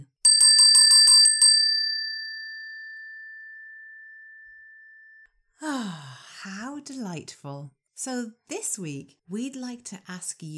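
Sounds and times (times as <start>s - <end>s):
small bright bell ringing: 0.2s - 5.2s
speech: 6.4s - 10.5s.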